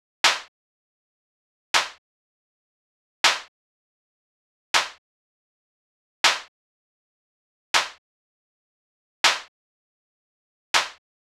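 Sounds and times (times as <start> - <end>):
hip hop snare drum in E minor at 80 BPM: 0.2 - 0.5, 1.8 - 2.0, 3.2 - 3.5, 4.8 - 5.0, 6.2 - 6.5, 7.8 - 8.0, 9.2 - 9.5, 10.8 - 11.0.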